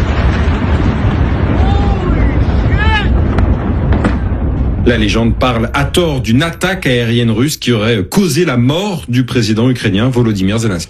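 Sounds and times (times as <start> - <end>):
massive explosion roar in a city: 0.0 - 8.8
speech: 4.9 - 10.8.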